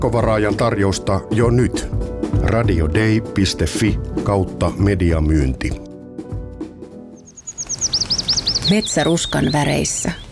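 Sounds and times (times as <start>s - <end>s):
speech: 0.0s - 5.8s, 8.7s - 10.2s
flocks of birds chirping, gathered for autumn migration: 7.2s - 10.2s.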